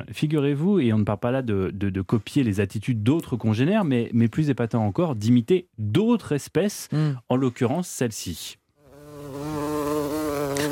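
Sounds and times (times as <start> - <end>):
speech: 0.0 - 8.6
hornet buzzing: 8.9 - 10.7.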